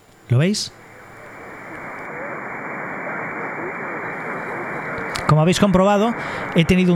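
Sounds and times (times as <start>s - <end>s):
faint warbling traces in radio static: 0.0s - 6.7s
SDR receiver static with AGC decay set to 500 milliseconds: 0.0s - 6.9s
speech: 0.3s - 0.8s, 5.4s - 6.9s.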